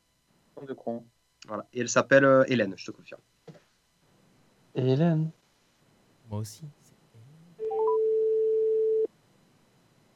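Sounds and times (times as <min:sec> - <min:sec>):
speech: 0:00.6 - 0:03.3, 0:04.8 - 0:05.4, 0:06.3 - 0:06.8
telephone ringback tone on an outgoing call: 0:07.6 - 0:09.1.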